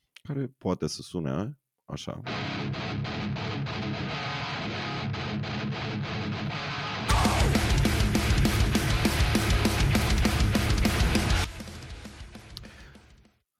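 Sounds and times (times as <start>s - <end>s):
speech: 0.3s - 3.0s
distorted guitars of a metalcore band: 2.2s - 13.2s
steady pounding drums of a metalcore band: 7.1s - 13.2s.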